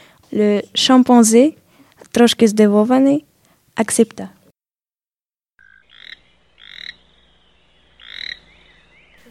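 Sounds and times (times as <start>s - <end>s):
speech: 0.3s - 4.4s
toad croaking in drawn-out rising trills: 5.6s - 7.3s, 7.9s - 8.7s.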